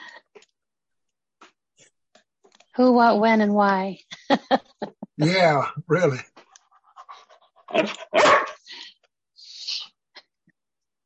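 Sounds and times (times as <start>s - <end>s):
speech: 2.8s - 6.3s, 7.7s - 8.5s
laughter: 4.1s - 6.1s
dog barking: 7.8s - 8.6s.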